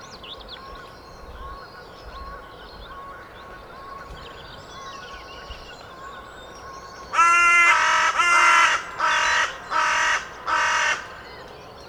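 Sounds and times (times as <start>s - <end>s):
carrion crow Corvus corone calling rough grating caws: 7.2s - 11.3s.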